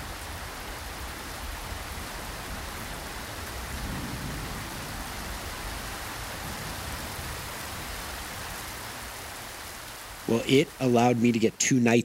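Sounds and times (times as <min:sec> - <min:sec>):
heavy rain pouring steadily from a white noise app: 0:00.0 - 0:12.0
soft low rumble of thunder from a white noise app: 0:02.4 - 0:08.5
speech: 0:10.3 - 0:12.0.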